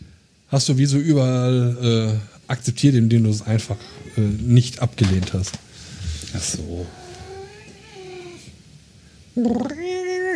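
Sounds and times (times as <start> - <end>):
speech: 0.5 - 5.7, 6.3 - 7.0, 9.4 - 9.8
cat meowing after waking up: 3.5 - 4.7, 6.5 - 8.6, 9.4 - 10.3.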